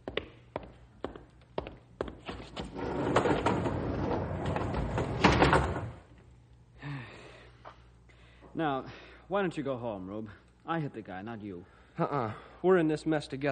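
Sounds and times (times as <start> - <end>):
heavy door rumbling slide ending in a thud: 2.6 - 6.1
speech: 8.6 - 13.5.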